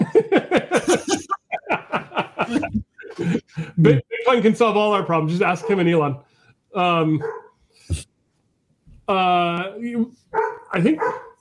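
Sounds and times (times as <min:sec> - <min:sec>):
laughter: 0:00.0 - 0:04.3
speech: 0:03.8 - 0:08.1, 0:09.1 - 0:11.2
98-pound Bernedoodle barking with whining barks: 0:05.5 - 0:05.9, 0:07.2 - 0:07.6, 0:10.3 - 0:11.3.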